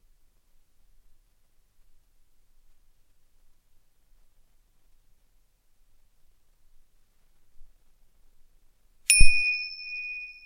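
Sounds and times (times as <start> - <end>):
meditation bell struck and ringing: 9.1 - 10.4.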